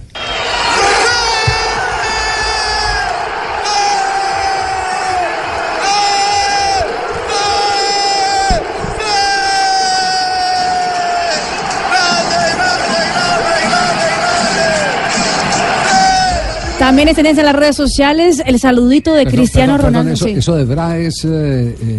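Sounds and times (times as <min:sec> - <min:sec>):
packed stadium crowd cheering a penalty goal: 0:00.0 - 0:18.7
speech: 0:16.9 - 0:21.9.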